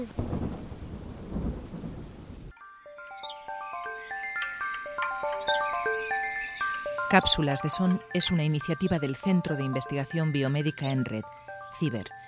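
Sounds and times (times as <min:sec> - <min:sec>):
speech: 0:00.0 - 0:00.5, 0:07.1 - 0:12.2
deep rolling thunder rumble: 0:00.0 - 0:02.5
steady rain: 0:00.0 - 0:02.5
bright tinkling chime-like music: 0:02.5 - 0:12.2.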